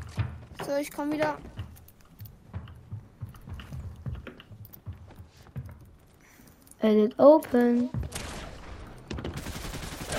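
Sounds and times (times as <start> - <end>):
speech: 0.7 - 1.6, 6.8 - 8.0
video game gunfire: 7.9 - 10.1.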